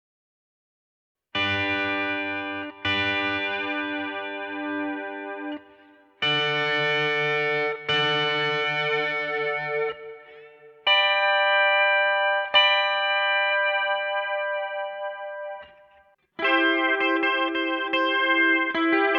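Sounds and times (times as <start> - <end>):
chorus effect guitar: 1.4 - 19.1.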